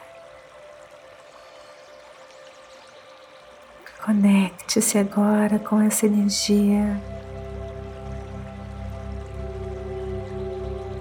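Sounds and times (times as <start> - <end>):
flowing water: 0.0 - 10.9
speech: 4.0 - 7.2.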